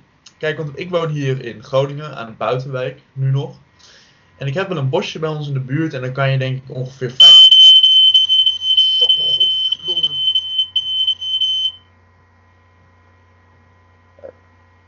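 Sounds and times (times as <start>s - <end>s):
faint low hum: 0.0s - 14.8s
speech: 0.4s - 7.6s
loud shrill smoke alarm beeping: 7.2s - 11.8s.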